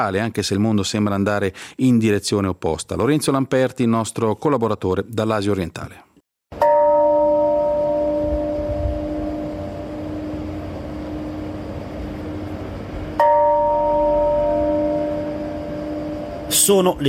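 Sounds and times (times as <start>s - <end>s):
speech: 0.0s - 6.1s, 16.7s - 17.0s
large peace memorial bell tolling: 6.5s - 17.0s
low outdoor rumble: 8.0s - 17.0s.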